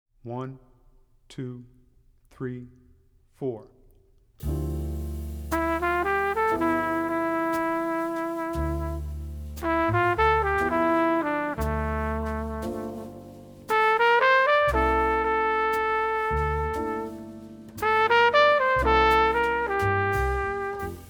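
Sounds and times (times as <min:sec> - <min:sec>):
jazz ballad with alto saxophone: 0:04.4 - 0:21.0.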